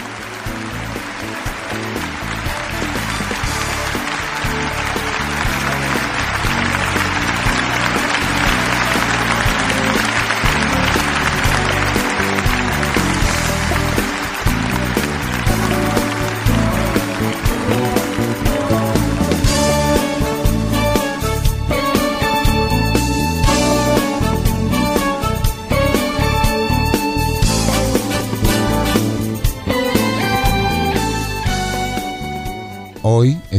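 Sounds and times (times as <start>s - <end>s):
large crowd applauding as praise to God: 0.0s - 32.3s
music playing: 0.0s - 33.5s.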